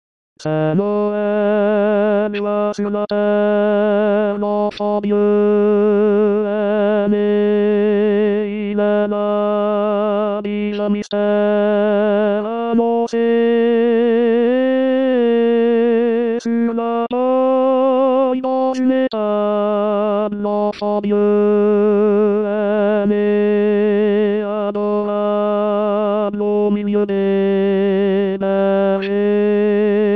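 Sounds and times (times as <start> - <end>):
tenor singing: 0.4 - 30.1.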